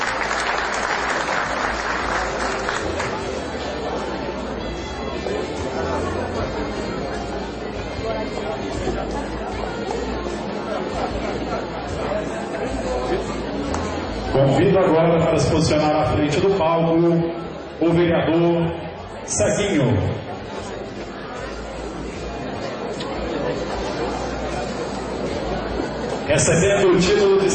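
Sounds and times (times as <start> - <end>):
large audience applause at an award ceremony: 0.0 - 3.4
murmur of crowd chatter: 0.0 - 27.5
speech: 14.4 - 20.1, 26.4 - 27.5.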